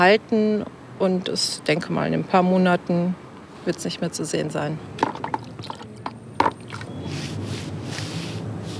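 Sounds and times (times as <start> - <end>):
speech: 0.0 - 5.0
tool clicking and knocking against a paint container: 5.0 - 6.6.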